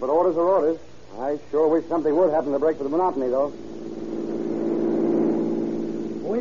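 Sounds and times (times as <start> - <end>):
speech: 0.0 - 3.7
car engine roaring while accelerating through traffic: 3.3 - 6.4.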